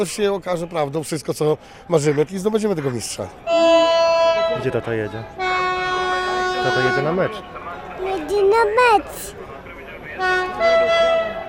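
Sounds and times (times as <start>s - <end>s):
speech: 0.0s - 5.4s, 6.6s - 9.4s, 10.2s - 11.1s
train horn blaring: 3.4s - 7.4s, 10.1s - 11.4s.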